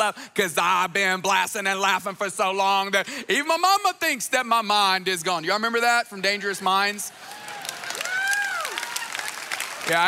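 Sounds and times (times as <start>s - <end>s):
speech: 0.0s - 7.4s, 9.9s - 10.0s
audience clapping: 6.9s - 10.0s.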